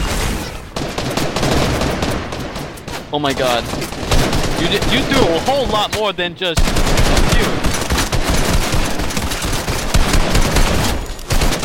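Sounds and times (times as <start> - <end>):
rapid gunfire volleys in a video game: 0.0 - 11.6
speech: 3.1 - 7.6.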